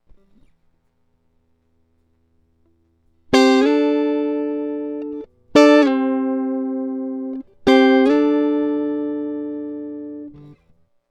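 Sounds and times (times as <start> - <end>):
electric guitar: 3.3 - 10.8.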